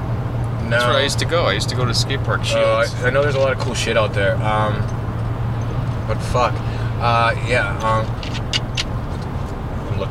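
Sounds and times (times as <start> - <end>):
low rumble of a moving car cabin: 0.0 - 10.0
speech: 0.7 - 5.0, 6.1 - 8.6.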